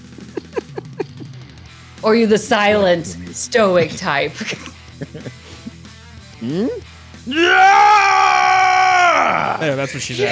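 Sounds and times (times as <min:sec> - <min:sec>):
laughter: 0:00.0 - 0:05.8, 0:09.5 - 0:10.2
speech: 0:02.0 - 0:05.1, 0:06.4 - 0:08.3, 0:09.2 - 0:10.2
man yelping: 0:06.5 - 0:10.2
man rage screaming: 0:07.3 - 0:09.6.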